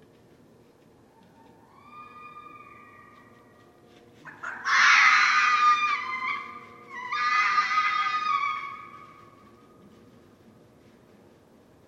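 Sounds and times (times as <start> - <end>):
red fox screaming: 1.6 - 3.4, 4.3 - 9.4.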